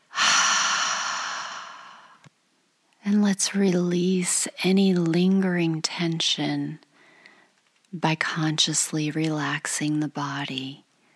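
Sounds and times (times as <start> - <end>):
long exhale during a guided tense-and-hold breathing exercise: 0.1 - 2.2
speech: 3.1 - 6.9, 7.9 - 10.8.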